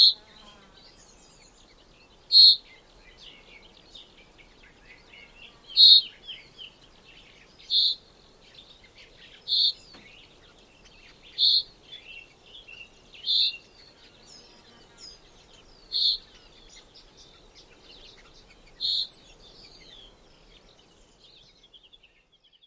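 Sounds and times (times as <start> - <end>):
soft bird twitters: 0.0 - 22.6
common chaffinch sharp piercing calls: 2.3 - 2.8, 4.8 - 6.6, 7.5 - 14.1, 15.0 - 20.1.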